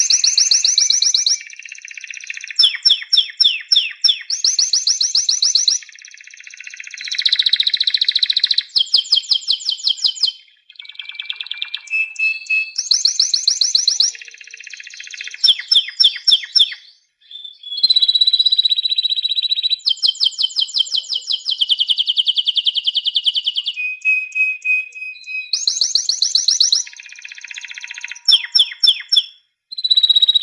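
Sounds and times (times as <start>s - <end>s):
canary singing: 0.0s - 30.4s.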